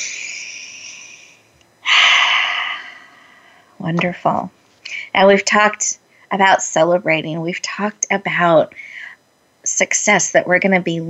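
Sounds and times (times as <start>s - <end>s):
deep breathing during a guided relaxation exercise: 0.0s - 3.8s
speech: 3.8s - 4.6s, 5.2s - 9.0s, 9.6s - 11.0s.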